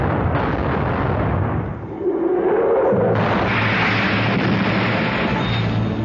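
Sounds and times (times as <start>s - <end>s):
sailing warship's cannon broadside firing red-hot shot in a naval battle: 0.0s - 1.8s, 3.1s - 5.9s.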